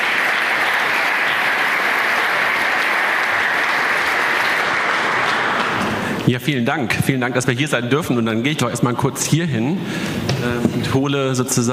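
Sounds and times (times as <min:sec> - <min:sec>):
audience applause: 0:00.0 - 0:06.3
speech: 0:06.3 - 0:11.7.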